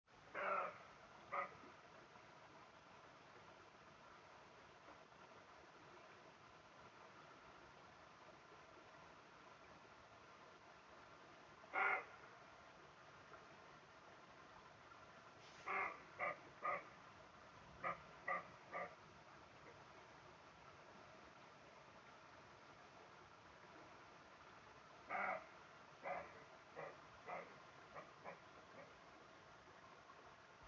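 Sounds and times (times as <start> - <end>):
fox barking: 0.3 - 1.6, 11.7 - 12.2, 15.6 - 17.0, 17.8 - 19.0, 25.1 - 29.0.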